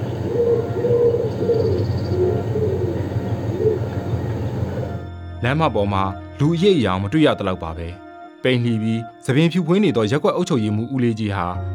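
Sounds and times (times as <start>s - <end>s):
doves cooing on overhead wires along a street: 0.0s - 5.0s
low rumble: 0.0s - 5.1s
speech: 5.4s - 11.7s.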